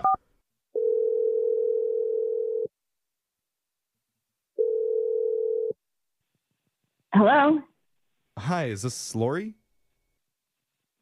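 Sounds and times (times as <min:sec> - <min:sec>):
telephone dial tone: 0:00.8 - 0:02.7, 0:04.6 - 0:05.7
speech: 0:07.2 - 0:07.7, 0:08.4 - 0:09.6.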